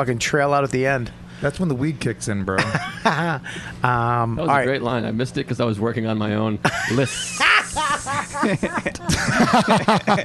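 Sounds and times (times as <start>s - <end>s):
speech: 0.0s - 7.4s, 8.0s - 10.2s
person chuckling: 6.6s - 10.2s
person imitating a garden snake hiss: 7.1s - 8.7s.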